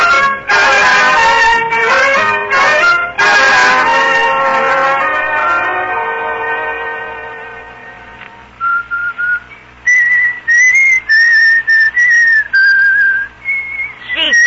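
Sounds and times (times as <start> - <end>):
harmonic tones: 0.0 - 14.4
person whistling a tune: 8.6 - 14.4.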